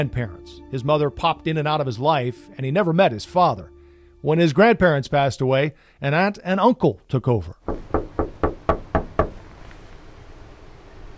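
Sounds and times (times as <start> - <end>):
speech: 0.0 - 7.9
firm knocks on a wooden house door: 7.7 - 9.4.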